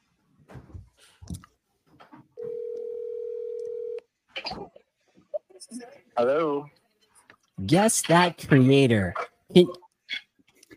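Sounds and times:
telephone dial tone on a call-in segment: 2.4 - 4.0
speech: 6.2 - 6.8, 7.6 - 9.8.

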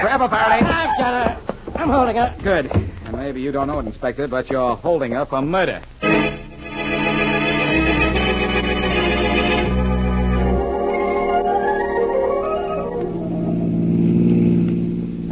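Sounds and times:
speech: 0.2 - 6.3
car engine driving during an afternoon ride: 6.0 - 15.3.

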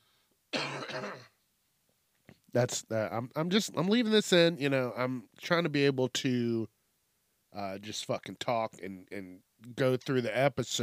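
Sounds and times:
harsh cough close to the microphone: 0.5 - 1.4
speech: 2.5 - 6.8, 7.5 - 10.8.

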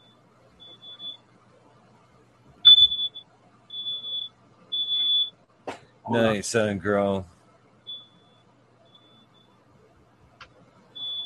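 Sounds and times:
smoke alarm beeping: 0.0 - 1.3, 2.6 - 5.4, 7.8 - 9.6, 10.9 - 11.2
speech: 6.1 - 7.4.

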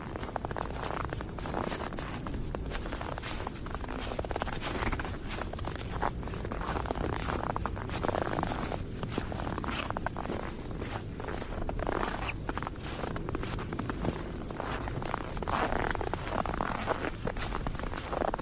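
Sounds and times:
footsteps crunching through crisp snow: 0.0 - 18.4.

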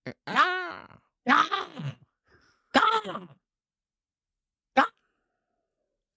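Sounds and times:
person imitating a crow's caw: 0.0 - 2.0.

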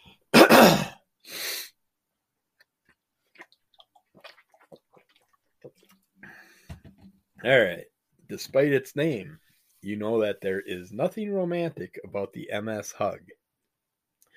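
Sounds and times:
loud coughs: 0.3 - 1.0
someone sipping and gulping water: 2.8 - 6.4
speech: 7.4 - 13.4.

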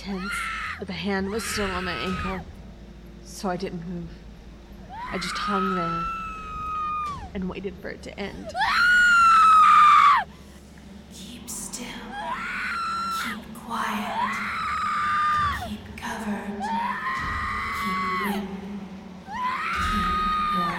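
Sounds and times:
woman screaming: 0.0 - 2.4, 4.9 - 7.3, 8.5 - 10.3, 12.1 - 13.4, 14.0 - 15.7, 16.6 - 18.4, 19.3 - 20.7
speech: 0.0 - 2.6, 3.4 - 4.2, 5.1 - 6.2, 7.3 - 8.8.

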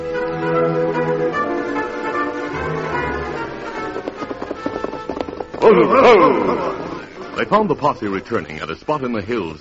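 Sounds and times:
orchestral music: 0.0 - 8.2
galloping horse hoofbeats: 1.4 - 8.6
speech: 5.7 - 6.8, 7.4 - 9.5.

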